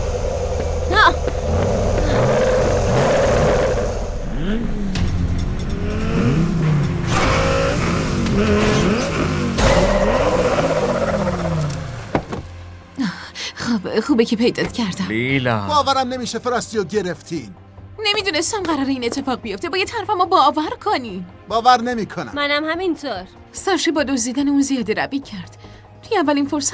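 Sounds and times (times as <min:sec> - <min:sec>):
several car engines revving as government-owned vehicles drive away: 0:00.0 - 0:12.4
speech: 0:14.2 - 0:26.7.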